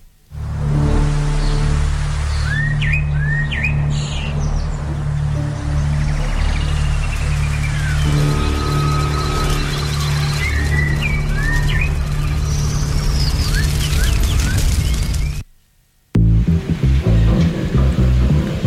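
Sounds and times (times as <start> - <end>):
droning hum and hiss of rainforest ambience: 0.0 - 18.6
small birds chirping in a rainforest: 1.2 - 15.5.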